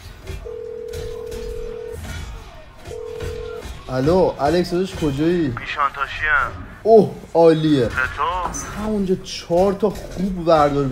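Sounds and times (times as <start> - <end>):
ringing tone of an outgoing phone call: 0.3 - 2.0, 2.8 - 3.7
speech: 3.9 - 10.9.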